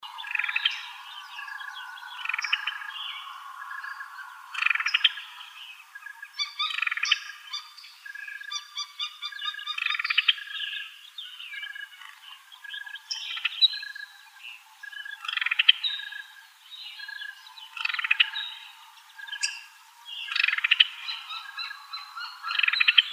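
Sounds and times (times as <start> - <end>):
Summer Tanager calls: 0.0 - 23.1.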